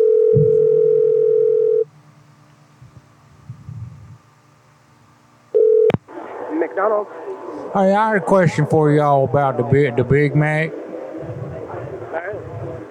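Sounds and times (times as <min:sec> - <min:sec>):
telephone dial tone while placing a prank call: 0:00.0 - 0:01.8, 0:05.6 - 0:06.0
speech: 0:06.8 - 0:10.8.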